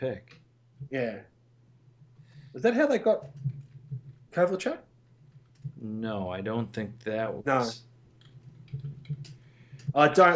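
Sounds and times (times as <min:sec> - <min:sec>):
speech: 0:00.0 - 0:01.4, 0:02.5 - 0:03.5, 0:04.4 - 0:04.9, 0:05.8 - 0:07.9, 0:10.0 - 0:10.3
low hum: 0:00.0 - 0:10.3
typing on a computer keyboard: 0:08.2 - 0:09.9.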